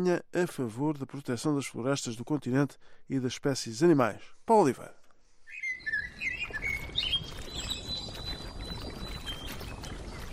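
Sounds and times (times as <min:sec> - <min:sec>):
speech: 0:00.0 - 0:05.0
birds chirping and singing in a park: 0:05.5 - 0:10.3.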